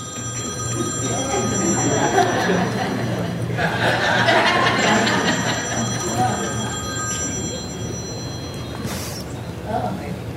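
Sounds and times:
telephone ringing: 0.0s - 9.3s
murmuring voices in a noisy room: 0.7s - 8.0s
scattered laughter: 1.2s - 6.4s.

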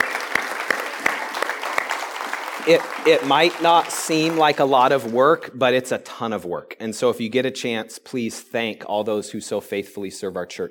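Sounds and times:
room full of people applauding: 0.0s - 5.4s
speech: 2.6s - 10.6s.

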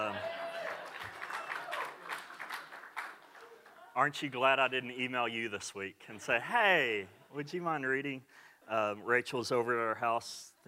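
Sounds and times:
roomful of people clapping: 0.0s - 4.3s
speech: 4.0s - 10.6s.

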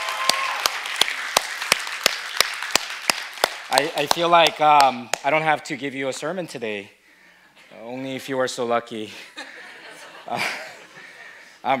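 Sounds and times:
audience applause at a Sunday service: 0.0s - 4.5s
sharp evenly spaced claps: 0.0s - 5.6s
speech: 3.7s - 7.0s, 7.7s - 9.3s, 10.3s - 10.6s
laughter: 9.1s - 11.6s.

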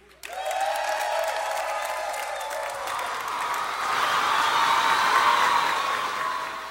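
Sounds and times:
crowd applauding: 0.0s - 6.7s
faint cheers: 0.2s - 6.7s.

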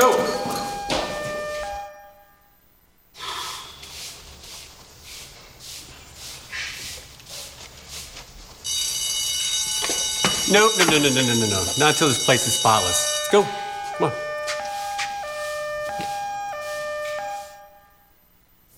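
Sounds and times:
loud alarm ringing with sustained buzzing tone: 0.0s - 2.6s, 8.6s - 18.2s
breathy huffs: 3.2s - 3.9s
rustling bursts: 3.9s - 17.6s
speech: 10.5s - 14.2s.

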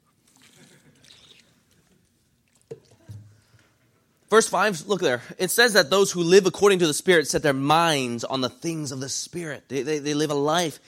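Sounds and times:
drinking water from a Gatorade squeeze bottle: 0.1s - 3.6s
gulp: 0.3s - 1.9s
speech: 4.3s - 10.8s.

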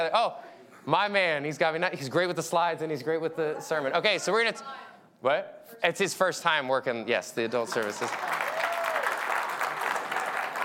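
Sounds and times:
speech: 0.0s - 8.5s
audience applause: 7.6s - 10.6s.

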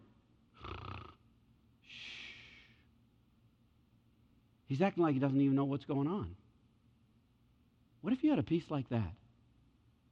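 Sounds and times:
voice imitating snoring: 0.6s - 1.2s
speech: 4.7s - 6.4s, 8.0s - 9.2s.

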